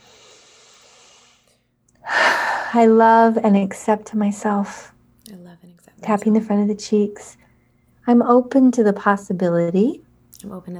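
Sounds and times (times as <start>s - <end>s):
big deep breath drawn in: 0.0s - 2.9s
speech: 2.7s - 7.4s, 8.0s - 10.7s.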